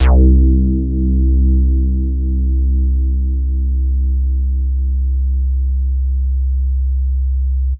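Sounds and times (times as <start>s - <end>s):
big synth basses: 0.0s - 7.7s.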